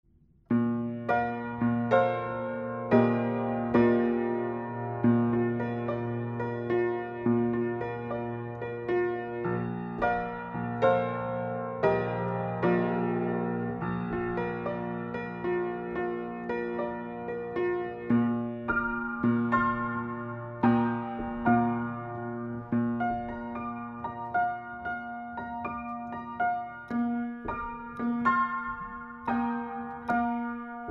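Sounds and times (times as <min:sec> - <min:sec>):
upright piano: 0:00.5 - 0:30.8.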